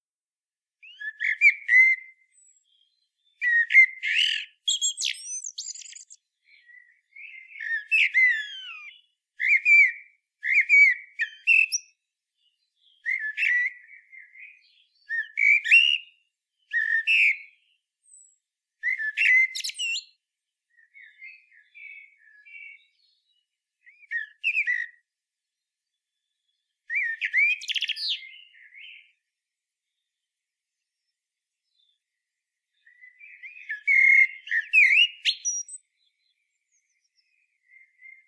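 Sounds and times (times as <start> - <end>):
common blackbird singing: 0.8 - 25.0, 26.2 - 29.2, 32.7 - 38.2.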